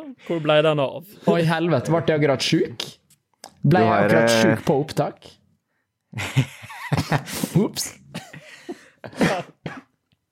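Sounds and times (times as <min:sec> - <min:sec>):
speech: 0:00.1 - 0:03.0, 0:03.6 - 0:05.4, 0:06.1 - 0:08.2, 0:09.0 - 0:09.8
laughter: 0:06.1 - 0:09.6
woman coughing: 0:09.1 - 0:09.9.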